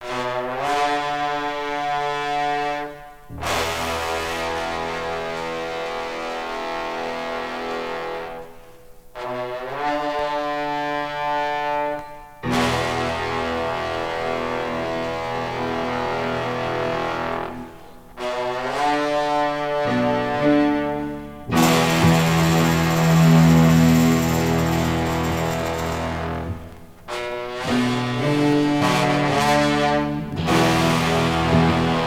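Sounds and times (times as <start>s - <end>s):
horns: 0.0s - 32.0s.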